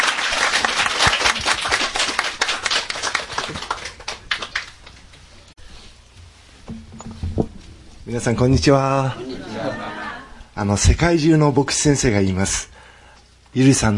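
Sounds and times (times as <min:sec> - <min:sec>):
audience applause welcoming a speaker: 0:00.0 - 0:05.0
speech: 0:08.1 - 0:09.9, 0:10.6 - 0:12.7, 0:13.5 - 0:13.9
laughter: 0:09.0 - 0:10.5.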